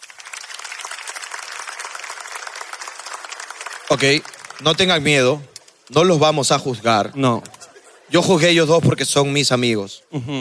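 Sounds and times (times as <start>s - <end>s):
audience of parents applauding: 0.0s - 5.4s
speech: 3.9s - 7.5s, 8.1s - 10.4s.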